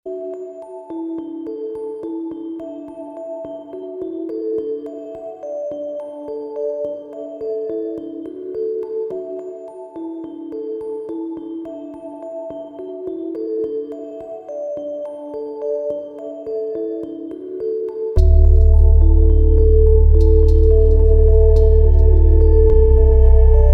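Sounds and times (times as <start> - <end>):
autumn ambient music jam: 18.2 - 23.7.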